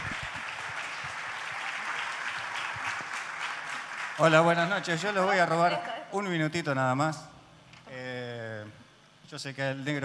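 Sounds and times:
applause from a live audience at a blues festival: 0.0s - 5.2s
speech: 4.2s - 7.3s, 9.3s - 10.0s.

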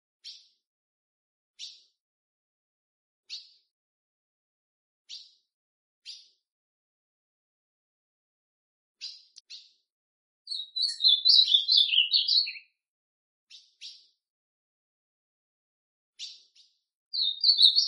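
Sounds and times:
Ultramarine grosbeak loud rich warbling song phrase: 9.0s - 9.8s, 10.5s - 12.8s, 13.5s - 14.1s, 16.2s - 17.8s.

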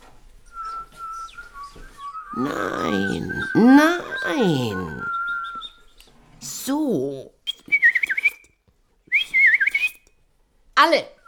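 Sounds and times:
faint low noise: 0.0s - 11.2s
person whistling in imitation of a bullfinch's call: 0.5s - 5.9s, 7.5s - 8.5s, 9.1s - 10.0s
speech: 2.4s - 5.1s, 6.7s - 7.3s.

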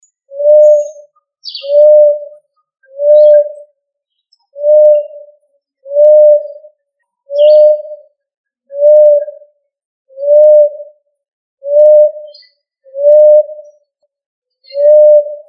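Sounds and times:
faint high bird chirps: 0.0s - 8.1s, 11.6s - 14.0s, 14.6s - 15.4s
pigeon hooting: 0.3s - 2.3s, 3.0s - 3.6s, 6.0s - 6.6s, 7.3s - 8.0s, 8.8s - 9.3s, 10.2s - 10.8s, 11.7s - 12.2s, 13.0s - 13.5s, 14.8s - 15.3s.

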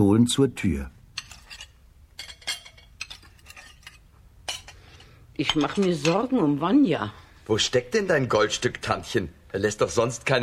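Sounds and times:
speech: 0.0s - 1.0s, 5.4s - 10.4s
light stirring of millet porridge: 1.1s - 6.6s
spoon clinking and scraping against dishes as millet porridge is served into bowls: 1.2s - 6.4s.

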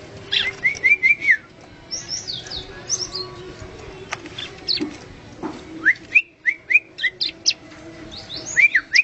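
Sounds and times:
bar-winged prinia singing: 0.3s - 3.4s, 4.4s - 4.9s, 5.8s - 9.0s.

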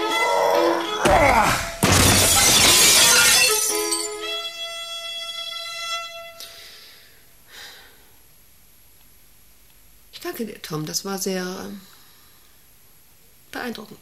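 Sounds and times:
office window glass shattering from a thrown desk: 1.0s - 4.3s
tinkling glass shards: 2.0s - 4.2s
speech: 10.4s - 12.0s, 13.6s - 14.0s.

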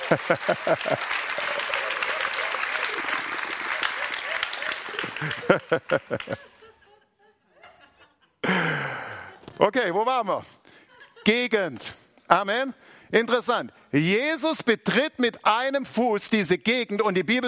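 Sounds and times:
congregation clapping at a worship service: 0.0s - 6.6s
congregation laughing at a worship service: 0.0s - 9.7s, 10.6s - 11.5s
speech: 0.1s - 1.5s, 5.2s - 6.5s, 9.6s - 10.6s, 11.2s - 17.4s.

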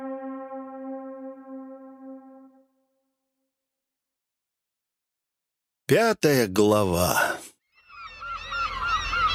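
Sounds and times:
speech: 5.9s - 7.4s
seagulls crying hoarsely: 7.8s - 9.3s.

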